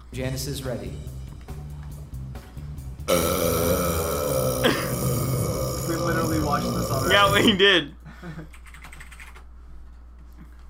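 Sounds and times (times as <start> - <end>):
speech: 0.2 - 1.1, 6.5 - 8.5
man burping: 3.1 - 7.6.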